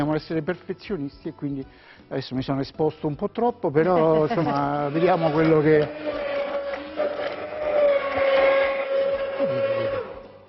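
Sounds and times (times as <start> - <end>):
speech: 0.0 - 6.3
immersion blender motor whining while blending sauce in a pot: 4.0 - 10.4
sauce churning and sloshing in a pot: 4.9 - 9.4.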